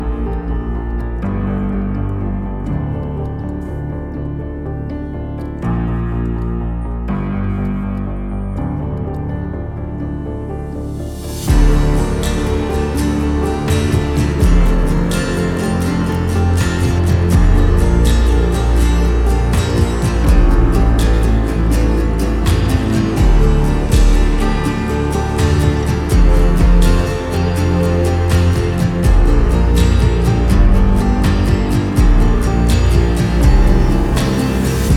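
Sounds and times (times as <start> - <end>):
instrumental music: 0.0 - 34.9.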